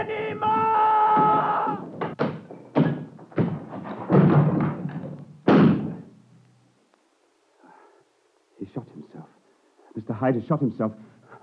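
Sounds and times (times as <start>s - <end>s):
heavy thuds and knocks of a door being smashed open: 0.3s - 6.1s
speech: 10.2s - 11.1s.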